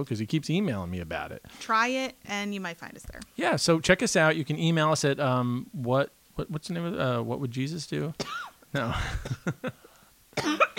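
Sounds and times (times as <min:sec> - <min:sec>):
speech: 0:00.0 - 0:09.8
person coughing: 0:08.2 - 0:09.6, 0:10.4 - 0:10.7.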